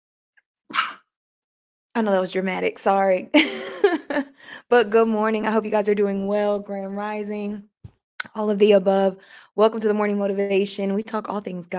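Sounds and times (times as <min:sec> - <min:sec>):
loud sneeze: 0:00.7 - 0:01.0
speech: 0:02.0 - 0:07.7, 0:08.3 - 0:11.7.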